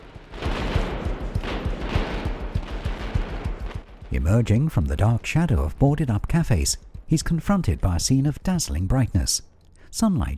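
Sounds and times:
intense exchange of gunfire at a street barricade: 0.0 - 7.1
speech: 4.2 - 10.3.

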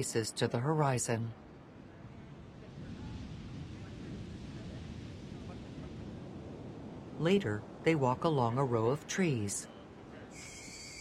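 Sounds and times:
speech: 0.0 - 1.5, 7.2 - 9.7
gusty wind buffeting the microphone: 1.3 - 8.9
ocean waves washing in: 1.3 - 11.0.

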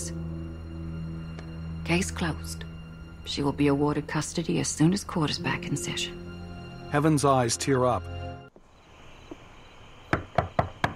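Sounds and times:
speech: 1.9 - 6.2, 6.9 - 8.2
firm knocking on a wooden front door: 10.1 - 10.9.

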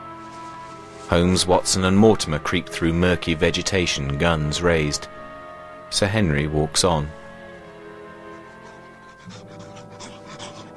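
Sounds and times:
sustained droning musical tones: 0.0 - 10.7
speech: 1.1 - 5.2, 5.9 - 7.2
large hound panting heavily: 7.6 - 10.7.

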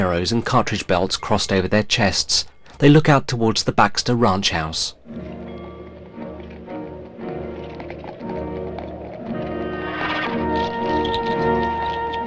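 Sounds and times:
speech: 0.0 - 5.4
horse hooves of riders setting out from a ranch: 4.5 - 12.2.

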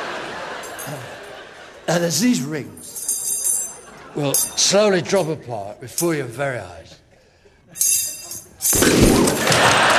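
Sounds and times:
laughter: 0.0 - 5.8, 9.2 - 9.9
speech: 0.9 - 1.2, 1.9 - 3.0, 4.2 - 7.0
box with a live dove inside exploding in a stage magic act: 8.8 - 9.8.

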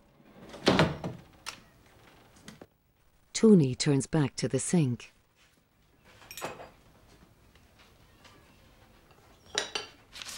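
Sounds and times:
wooden sliding door being pulled shut: 0.0 - 1.5
speech: 3.4 - 5.2.

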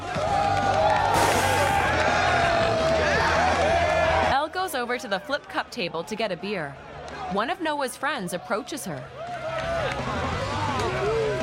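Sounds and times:
group cheering at a beach party: 0.0 - 4.4, 9.2 - 11.4
speech: 4.8 - 9.2.

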